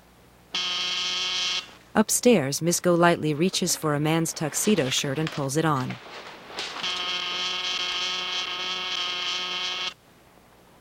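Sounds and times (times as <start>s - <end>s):
apartment door buzzer pressed at a row of mailboxes in a vestibule: 0.5s - 1.8s, 6.6s - 10.0s
speech: 2.0s - 6.3s.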